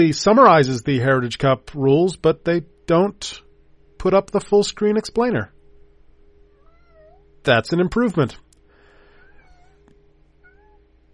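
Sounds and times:
speech: 0.0s - 3.4s, 4.0s - 5.6s, 7.4s - 8.4s
steady low hum: 0.0s - 11.1s
cat meowing in drawn-out wavering cries: 6.6s - 7.2s, 9.2s - 10.8s.

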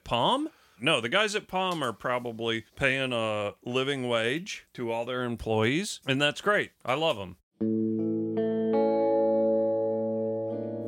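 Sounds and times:
speech: 0.1s - 7.8s
Teisco electric guitar with four pickups playing chords with reverb: 7.6s - 10.8s.

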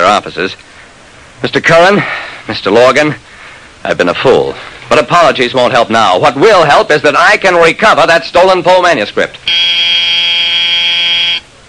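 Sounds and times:
speech: 0.2s - 0.8s, 1.4s - 10.6s
electric school class buzzer droning: 9.5s - 11.5s.

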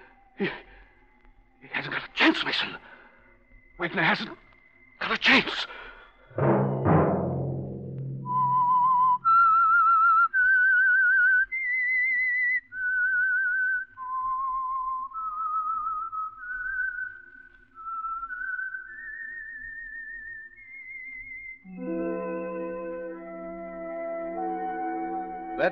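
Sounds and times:
speech: 0.4s - 0.6s, 2.4s - 2.9s, 3.8s - 4.4s, 5.0s - 6.6s
thud: 6.4s - 9.0s
instrumental music: 6.4s - 9.3s, 21.7s - 25.7s
lone whistled melody: 8.0s - 25.7s.

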